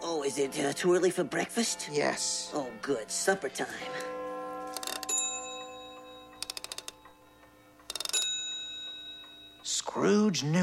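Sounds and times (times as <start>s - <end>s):
speech: 0.1s - 4.1s, 10.0s - 10.6s
clock striking the hour: 4.7s - 9.7s.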